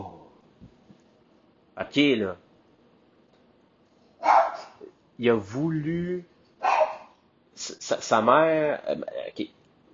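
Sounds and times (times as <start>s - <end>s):
speech: 1.8s - 2.4s, 5.2s - 6.3s, 7.6s - 9.6s
dog barking: 4.2s - 4.9s, 6.6s - 7.2s.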